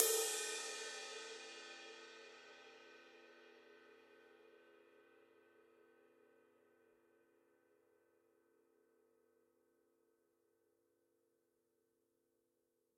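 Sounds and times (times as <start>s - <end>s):
ride cymbal on a Gretsch drum kit: 0.0s - 2.1s.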